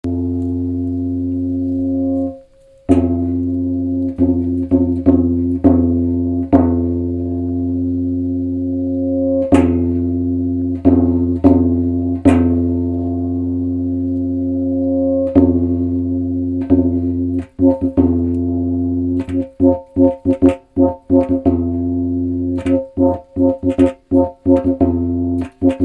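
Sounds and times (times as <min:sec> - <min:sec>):
Panaw gong: 0:00.0 - 0:25.8.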